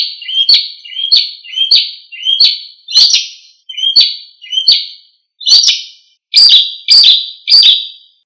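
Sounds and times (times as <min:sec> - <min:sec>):
bird singing sharp downslurred whistled notes in Indonesia: 0:00.0 - 0:08.2.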